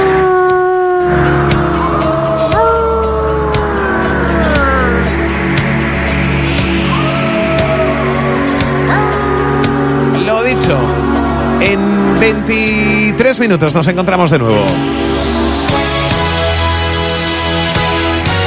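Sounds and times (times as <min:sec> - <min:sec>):
wolves howling in a chorus: 0:00.0 - 0:13.0
steady low rumble: 0:01.4 - 0:18.3
speech: 0:13.4 - 0:15.2.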